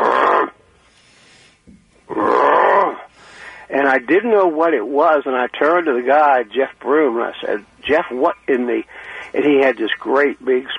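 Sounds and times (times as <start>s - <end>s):
lions roaring: 0.0s - 0.6s, 2.1s - 3.1s
speech: 3.9s - 10.7s.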